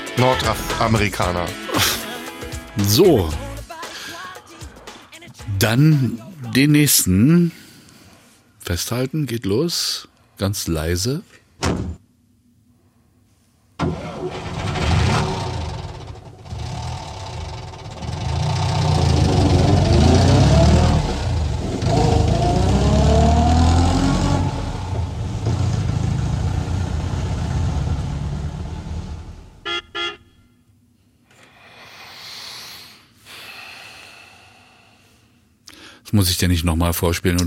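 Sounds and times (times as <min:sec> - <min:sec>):
speech: 0:00.2 - 0:02.0, 0:02.8 - 0:03.4, 0:05.6 - 0:07.6, 0:08.7 - 0:12.0, 0:36.2 - 0:37.4
American pickup truck engine starting and revving: 0:13.8 - 0:29.6.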